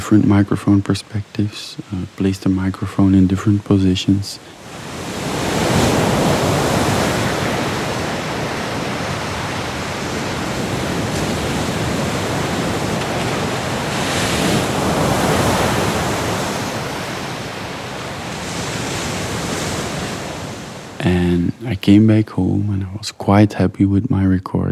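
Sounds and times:
speech: 0:00.1 - 0:04.9, 0:21.9 - 0:24.7
sea surf with waves breaking and washing in: 0:02.8 - 0:21.1.

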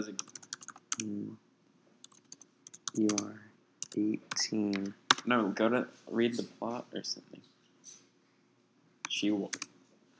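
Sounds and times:
typing on a computer keyboard: 0:00.2 - 0:01.1, 0:02.0 - 0:04.4
speech: 0:03.0 - 0:03.4, 0:04.0 - 0:07.5, 0:09.2 - 0:09.6.

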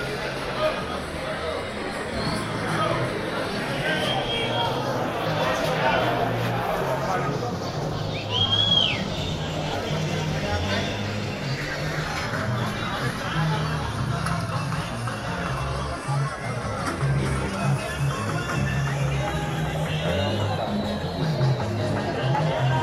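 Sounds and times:
crowd babble in a busy public market: 0:00.0 - 0:22.8
short high whistle-like sound: 0:08.0 - 0:09.7.

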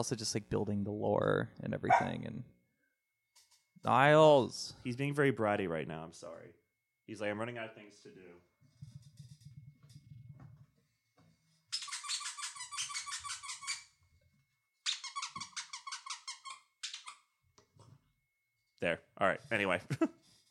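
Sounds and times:
speech: 0:00.0 - 0:02.6, 0:03.8 - 0:09.0, 0:18.8 - 0:20.2
squeaky toy squeezed by a dog: 0:11.7 - 0:14.0, 0:14.8 - 0:17.3.

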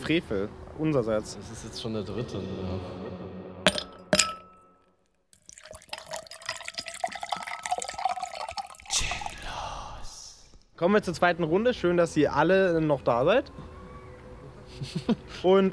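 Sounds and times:
speech: 0:00.1 - 0:03.2, 0:10.8 - 0:13.7, 0:14.8 - 0:15.7
glasses clinking in a toast: 0:03.7 - 0:04.7, 0:05.5 - 0:09.2
liquid pouring and trickling into a glass: 0:05.3 - 0:09.8
laughter: 0:14.7 - 0:15.5.

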